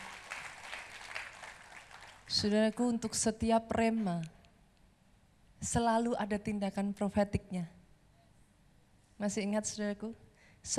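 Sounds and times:
audience applauding: 0:00.0 - 0:02.4
speech: 0:02.3 - 0:04.4, 0:05.6 - 0:07.8, 0:09.2 - 0:10.7.

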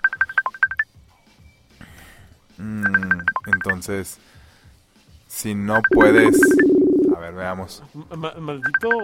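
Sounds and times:
incoming app call ringtone beeps: 0:00.0 - 0:00.8, 0:02.8 - 0:03.8, 0:05.8 - 0:07.2, 0:08.7 - 0:09.0
speech: 0:02.6 - 0:04.4, 0:05.4 - 0:06.6, 0:07.2 - 0:09.0.

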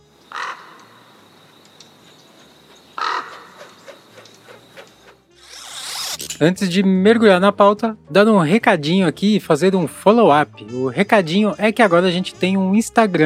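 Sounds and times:
crow cawing: 0:00.3 - 0:01.2, 0:03.0 - 0:04.0
speech: 0:06.4 - 0:13.2.

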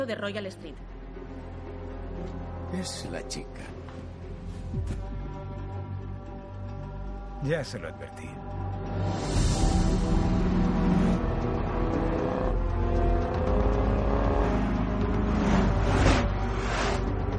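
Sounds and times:
speech: 0:00.0 - 0:00.9, 0:02.2 - 0:04.0, 0:04.7 - 0:05.1, 0:07.4 - 0:10.2
car engine droning and revving while driving toward a hotel: 0:09.6 - 0:17.3.

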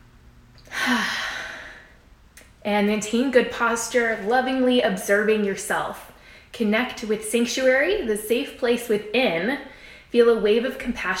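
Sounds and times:
deep breath let out as a soft breathy sigh: 0:00.7 - 0:02.0
speech: 0:02.6 - 0:11.1.

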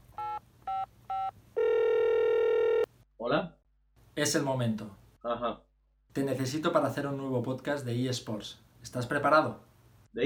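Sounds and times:
long steady telephone tone: 0:00.2 - 0:02.9
speech: 0:04.2 - 0:10.2.

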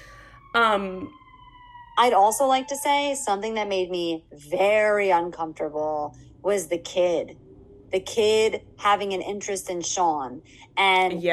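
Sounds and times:
emergency vehicle sirens wailing outside: 0:00.0 - 0:10.9
speech: 0:00.6 - 0:01.2, 0:02.0 - 0:11.3.

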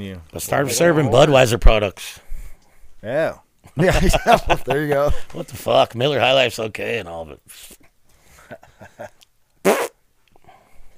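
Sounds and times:
speech: 0:00.0 - 0:02.2, 0:03.0 - 0:07.8, 0:08.5 - 0:09.8
laughter: 0:03.8 - 0:05.6
short loud fart: 0:09.6 - 0:10.0.

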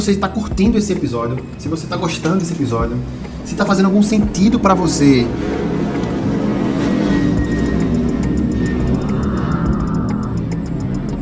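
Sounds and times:
speech: 0:00.0 - 0:05.7
airplane passing overhead: 0:00.0 - 0:11.2
faint ticking clicks: 0:00.0 - 0:11.2.

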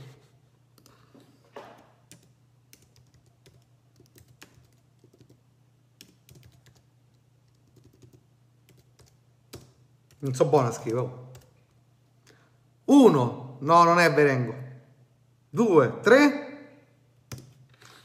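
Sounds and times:
typing on a computer keyboard: 0:02.1 - 0:05.4, 0:06.0 - 0:10.2
speech: 0:10.2 - 0:11.2, 0:13.0 - 0:14.6, 0:15.6 - 0:16.4.

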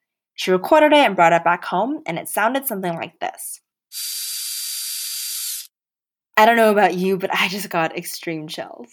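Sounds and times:
speech: 0:00.4 - 0:04.2, 0:06.4 - 0:08.9
dentist's drill going through a woman's teeth: 0:03.9 - 0:05.8.

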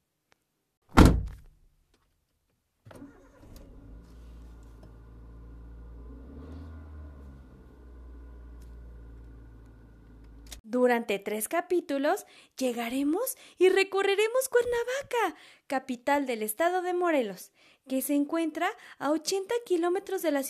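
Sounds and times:
car door slamming shut: 0:00.9 - 0:01.4
car engine starting and idling: 0:03.0 - 0:10.6
speech: 0:10.8 - 0:20.4.

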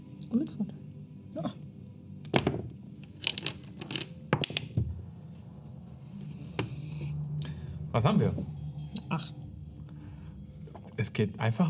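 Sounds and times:
low hum: 0:00.0 - 0:11.6
speech: 0:00.3 - 0:01.6, 0:08.0 - 0:09.4, 0:11.0 - 0:11.6
dice rolling across a tabletop: 0:02.3 - 0:04.9.

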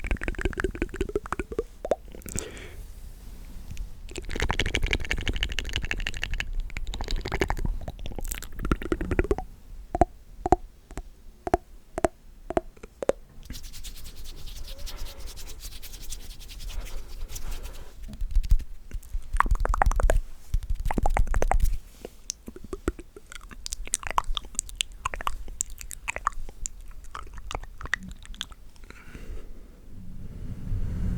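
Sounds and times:
wet mouth sounds with chewing and smacking: 0:00.0 - 0:02.7, 0:03.7 - 0:29.2
soft rubbing and scratching: 0:13.4 - 0:22.2.

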